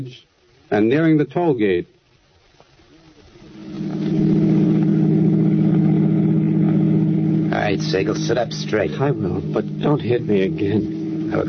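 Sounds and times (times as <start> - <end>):
speech: 0.0 - 2.0, 7.7 - 11.4
car engine droning as the vehicle drives along: 3.3 - 11.4.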